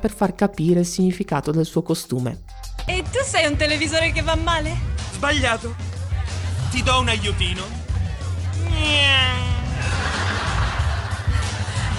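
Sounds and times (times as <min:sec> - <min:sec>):
speech: 0:00.0 - 0:05.9, 0:06.7 - 0:07.8, 0:08.6 - 0:09.5
laughter: 0:05.8 - 0:11.9
voice imitating race car speeding past on a racetrack: 0:08.6 - 0:10.0.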